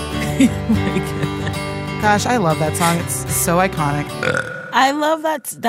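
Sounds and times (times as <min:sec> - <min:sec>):
laughter: 0:00.2 - 0:01.7
speech: 0:00.4 - 0:01.2, 0:02.0 - 0:05.6
person burping: 0:04.2 - 0:04.8.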